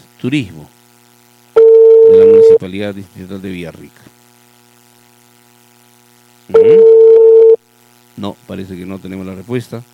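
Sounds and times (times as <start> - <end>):
speech: 0.2 - 0.8, 2.1 - 4.2, 8.2 - 9.9
telephone call tone on an unanswered call: 1.6 - 2.6, 6.5 - 7.6.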